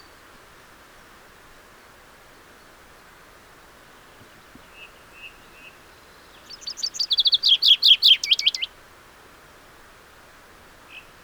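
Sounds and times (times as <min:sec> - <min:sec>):
common chaffinch Fringilla coelebs singing: 0:06.4 - 0:08.7.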